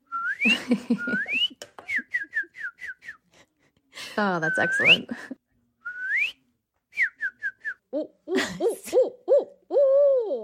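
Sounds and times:
person whistling an imitation of a cardinal's song: 0:00.0 - 0:03.2, 0:05.8 - 0:07.8
speech: 0:00.4 - 0:01.6, 0:04.2 - 0:05.4, 0:08.4 - 0:09.2.

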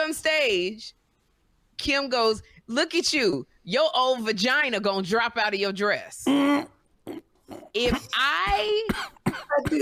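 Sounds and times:
speech: 0:00.1 - 0:01.0, 0:01.8 - 0:09.8
voice imitating coughs and strained hacking: 0:06.3 - 0:09.8.

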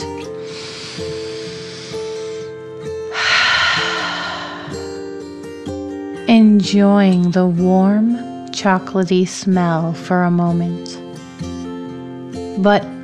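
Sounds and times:
soft sustained music bed: 0:00.0 - 0:13.0
slow deep breath drawn in and let out: 0:00.3 - 0:05.6
speech: 0:06.6 - 0:11.0, 0:12.6 - 0:12.9.

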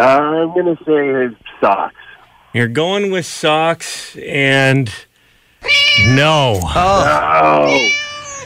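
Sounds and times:
speech: 0:00.0 - 0:08.0
kittens meowing: 0:05.6 - 0:08.4.

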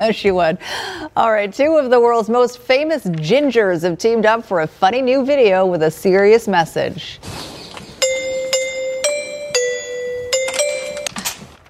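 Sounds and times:
speech: 0:00.0 - 0:07.5
electronic doorbell chime melody: 0:08.0 - 0:11.3.

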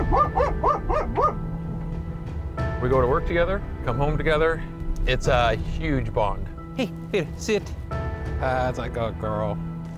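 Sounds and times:
dog barking in high-pitched yaps: 0:00.0 - 0:01.4
speech: 0:02.8 - 0:09.7.

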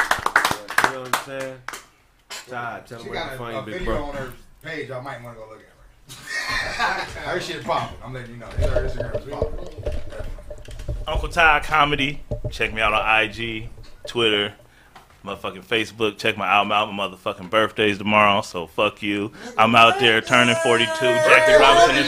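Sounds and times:
people clapping hands in applause: 0:00.0 - 0:02.0
speech: 0:01.0 - 0:01.7, 0:02.5 - 0:10.0, 0:11.1 - 0:14.6, 0:15.2 - 0:22.0
lively voices: 0:02.5 - 0:22.0
laughter: 0:06.1 - 0:07.4.

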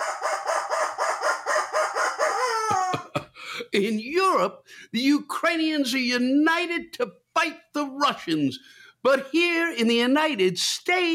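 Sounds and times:
rubber chicken toy squawking and wheezy squealing: 0:00.0 - 0:03.1
speech: 0:03.7 - 0:11.1.

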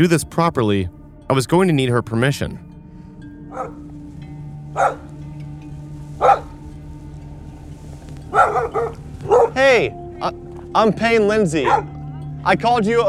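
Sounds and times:
speech: 0:00.0 - 0:02.7, 0:03.5 - 0:03.8, 0:04.7 - 0:05.1, 0:09.6 - 0:13.0
search dog barking: 0:03.5 - 0:03.9, 0:04.8 - 0:05.2, 0:06.2 - 0:06.6, 0:08.3 - 0:09.6, 0:11.6 - 0:12.0.

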